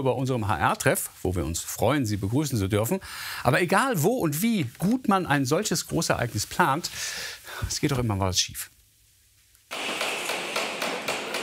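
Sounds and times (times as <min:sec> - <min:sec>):
speech: 0:00.0 - 0:08.8
sharp hammering knocks during construction: 0:09.7 - 0:11.4.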